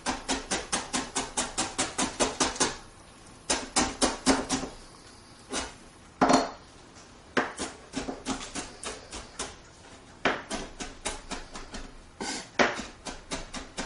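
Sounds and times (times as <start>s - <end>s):
knife finely chopping food on a cutting board: 0.0s - 2.8s, 3.5s - 4.7s, 7.4s - 9.6s, 10.2s - 13.8s.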